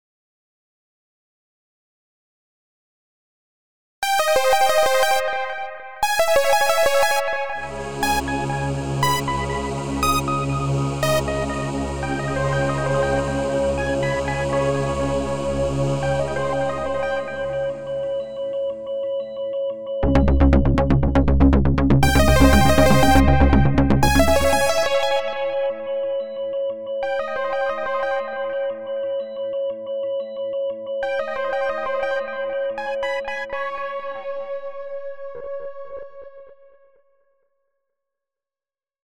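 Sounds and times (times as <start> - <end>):
synthesizer: 4.0 - 36.4.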